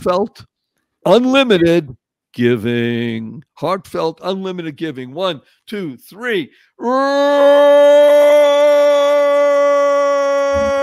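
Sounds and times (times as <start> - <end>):
speech: 0.0 - 8.3
people roaring like animals: 6.8 - 10.8.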